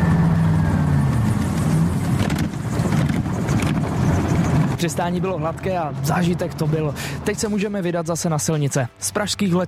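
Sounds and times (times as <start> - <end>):
rushing wind noise: 0.0 - 6.2
flying car engine droning in flight: 0.0 - 8.0
speech: 4.8 - 9.6.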